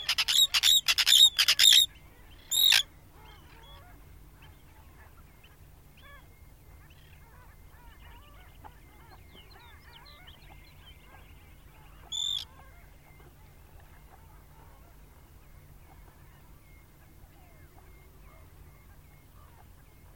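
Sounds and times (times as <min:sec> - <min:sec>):
arctic tern song: 0:00.0 - 0:02.8, 0:12.1 - 0:12.5.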